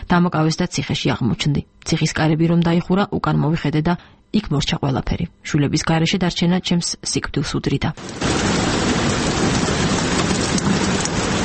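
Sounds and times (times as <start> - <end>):
speech: 0.1 - 8.8
rain sound played from a loudspeaker installed in a room: 8.0 - 11.4.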